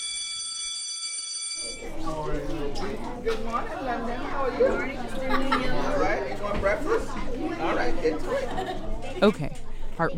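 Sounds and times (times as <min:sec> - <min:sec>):
school class bell ringing: 0:00.0 - 0:02.1
speech: 0:01.6 - 0:10.1
laughter: 0:03.3 - 0:09.6.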